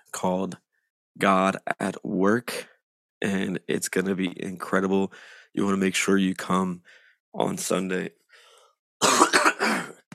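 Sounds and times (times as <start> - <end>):
speech: 0.2 - 0.6, 1.2 - 8.2
person clearing throat: 9.0 - 10.1
person coughing in harsh bursts: 9.0 - 10.1.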